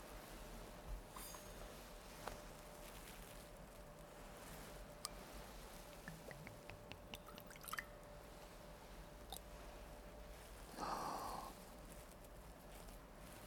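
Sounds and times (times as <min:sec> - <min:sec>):
faint steady hum: 0:00.0 - 0:13.4
water dripping: 0:05.8 - 0:08.0.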